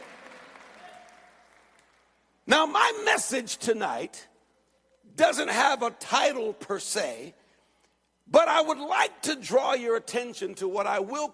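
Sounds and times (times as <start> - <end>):
large audience clapping: 0.0 - 2.4
speech: 2.5 - 4.3, 5.2 - 7.4, 8.3 - 11.3.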